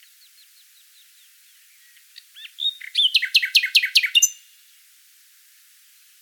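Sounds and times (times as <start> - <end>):
common nightingale singing: 0.0 - 4.6.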